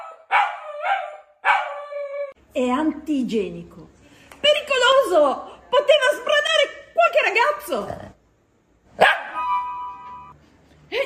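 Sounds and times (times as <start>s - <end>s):
dogs barking: 0.0s - 2.0s, 9.0s - 9.4s
speech: 2.6s - 6.6s, 7.2s - 8.0s.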